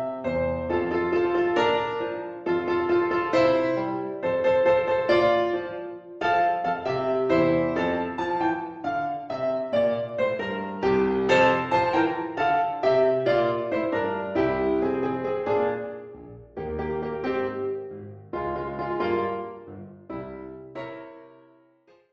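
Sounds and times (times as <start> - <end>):
minimal mambo music: 0.1 - 20.9.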